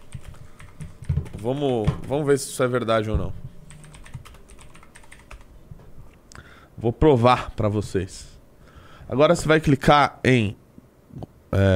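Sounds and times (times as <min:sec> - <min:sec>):
computer keyboard keystrokes typing a search: 0:00.0 - 0:01.9, 0:03.7 - 0:05.5
speech: 0:01.4 - 0:03.4, 0:06.8 - 0:08.3, 0:09.1 - 0:10.6, 0:11.2 - 0:11.7.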